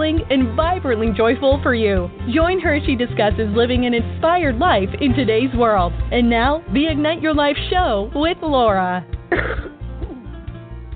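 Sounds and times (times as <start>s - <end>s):
speech: 0.1s - 9.7s
sharp cough: 9.3s - 10.2s.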